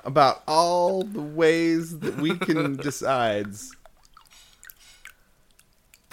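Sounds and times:
speech: 0:00.0 - 0:03.8
laughter: 0:02.0 - 0:03.3
water splashing and dripping: 0:03.2 - 0:06.1.

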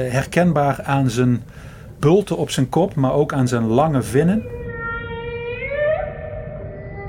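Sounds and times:
speech: 0:00.0 - 0:04.6
humpback whale moan: 0:04.6 - 0:07.0.

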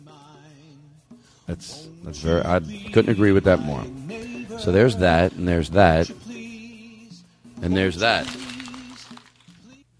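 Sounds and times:
speech: 0:01.5 - 0:06.2, 0:07.6 - 0:08.4
paper rustling and crinkling as a sheet is folded into a folder: 0:08.1 - 0:09.6.

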